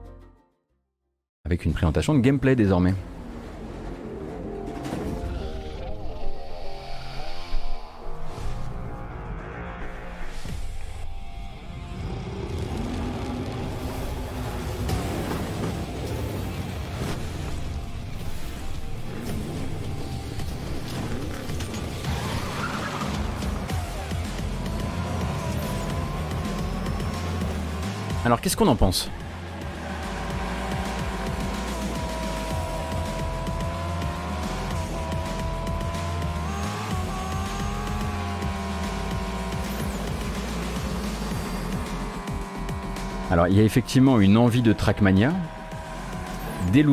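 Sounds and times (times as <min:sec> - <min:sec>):
toy-car racing video game music: 0:00.0 - 0:00.6, 0:02.9 - 0:46.9
speech: 0:01.5 - 0:03.1, 0:28.4 - 0:29.2, 0:43.3 - 0:45.6, 0:46.7 - 0:46.9
revving toy-car engines in a racing video game: 0:21.5 - 0:28.4, 0:29.0 - 0:46.9.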